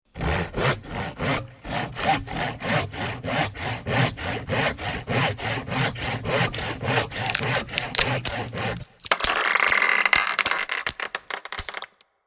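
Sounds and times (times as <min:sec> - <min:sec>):
hand saw sawing a tree: 0:00.1 - 0:09.1
felled tree falling: 0:06.8 - 0:11.9.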